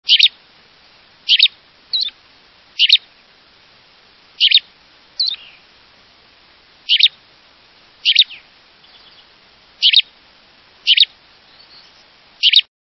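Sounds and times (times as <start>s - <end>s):
Gray Flycatcher calling: 0.0s - 0.4s, 1.2s - 2.2s, 2.8s - 3.1s, 4.4s - 5.8s, 6.8s - 7.2s, 8.0s - 10.2s, 10.8s - 12.7s.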